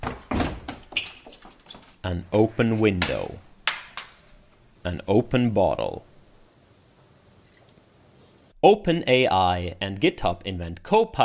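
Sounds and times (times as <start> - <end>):
door opening with a heavy thunk: 0.0 - 1.0
speech: 2.0 - 3.5, 4.8 - 6.1, 8.6 - 11.2.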